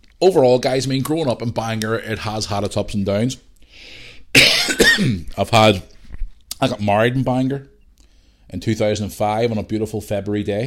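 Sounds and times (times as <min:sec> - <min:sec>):
speech: 0:00.2 - 0:05.9, 0:06.6 - 0:07.7, 0:08.5 - 0:10.6
person coughing: 0:04.4 - 0:05.3
person clearing throat: 0:04.4 - 0:05.4.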